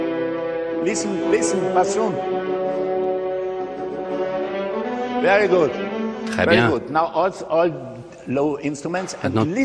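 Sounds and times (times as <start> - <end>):
bassoons and violas holding a sustained chord without vibrato: 0.0 - 7.2
speech: 0.8 - 2.6, 5.2 - 9.6.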